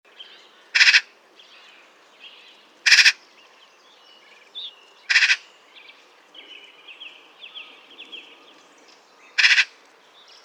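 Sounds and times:
Eurasian magpie Pica pica giving harsh grating calls: 0:00.8 - 0:01.1, 0:02.9 - 0:03.2, 0:05.1 - 0:05.4, 0:09.4 - 0:09.8.

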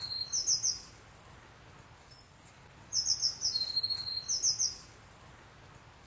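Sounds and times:
Eurasian blue tit Cyanistes caeruleus high thin calls: 0:00.0 - 0:01.0, 0:02.9 - 0:04.9
Eurasian blue tit lower buzzy trill: 0:00.0 - 0:01.0, 0:02.1 - 0:05.0
faint low hum: 0:00.0 - 0:06.0.

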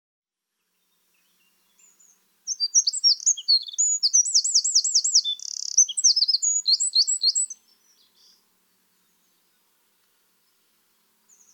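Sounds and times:
Eurasian wren Troglodytes troglodytes singing shrill notes and trills: 0:01.2 - 0:08.4.

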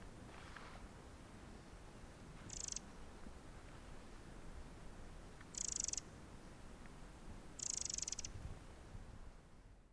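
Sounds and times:
low background hiss: 0:00.0 - 0:09.9
Eurasian wren Troglodytes troglodytes ticking rattles: 0:02.4 - 0:02.9, 0:05.4 - 0:06.1, 0:07.6 - 0:08.4.

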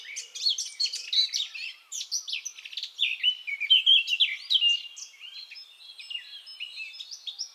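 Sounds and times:
Eurasian blackcap Sylvia atricapilla warbling song: 0:00.0 - 0:07.5.

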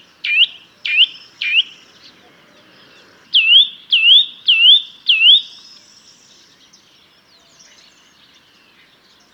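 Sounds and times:
Eurasian nuthatch Sitta europaea loud sharp twit calls: 0:00.2 - 0:02.1, 0:02.8 - 0:05.6.

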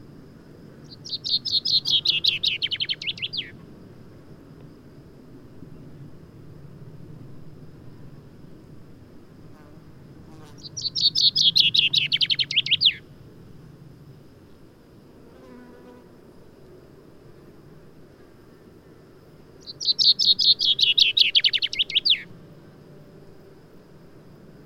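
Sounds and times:
common chaffinch Fringilla coelebs singing: 0:00.9 - 0:03.6, 0:10.6 - 0:13.0, 0:19.6 - 0:22.3.

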